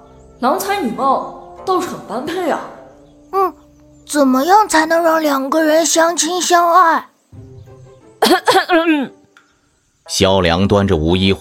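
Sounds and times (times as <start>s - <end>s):
speech: 0.4s - 7.4s, 8.3s - 9.2s, 10.1s - 11.3s
person coughing after choking on a sip of tea: 8.2s - 9.1s.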